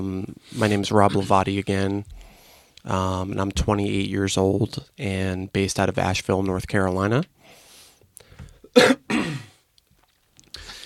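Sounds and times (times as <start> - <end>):
speech: 0.0 - 2.2, 2.8 - 7.6, 8.7 - 9.4
person clearing throat: 8.7 - 9.6.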